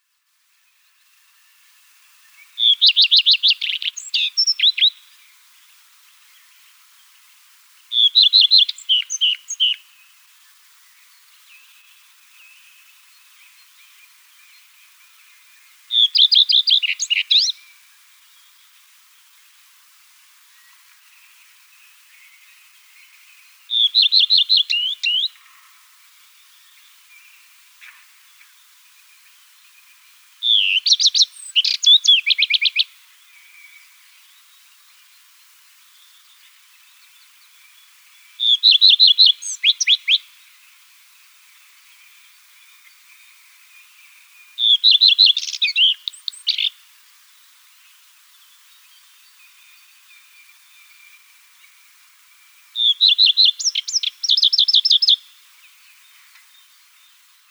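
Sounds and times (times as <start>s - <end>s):
common redstart singing: 2.4s - 5.2s, 7.9s - 9.9s, 10.9s - 17.7s, 21.8s - 25.4s, 26.4s - 34.4s, 36.0s - 40.2s, 42.0s - 46.8s, 52.8s - 57.2s.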